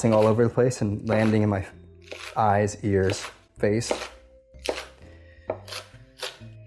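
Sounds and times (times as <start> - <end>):
knife chopping green onions on a cutting board: 0.0 - 0.5, 1.1 - 2.4, 3.0 - 6.5
speech: 0.0 - 1.8, 2.4 - 4.2.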